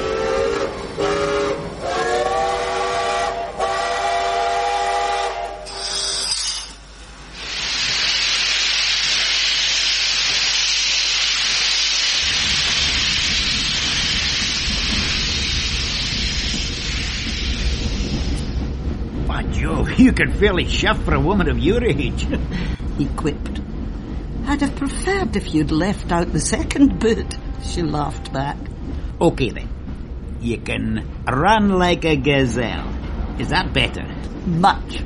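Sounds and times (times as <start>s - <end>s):
steam train whistle: 0.0s - 6.7s
steam train hissing steam: 0.0s - 18.7s
steam train engine rumbling and pulling away: 0.0s - 35.0s
speech: 20.2s - 23.5s, 24.6s - 29.7s, 30.4s - 35.0s.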